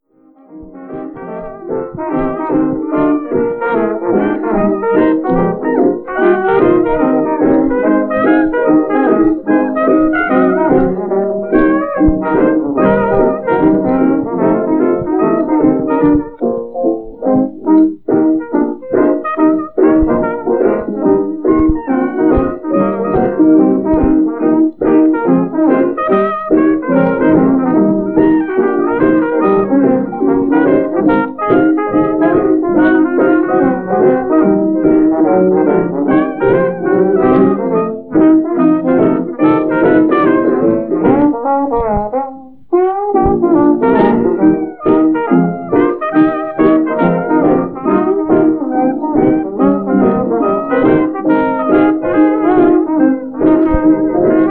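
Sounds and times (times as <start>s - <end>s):
old jazz music: 0.0s - 54.4s.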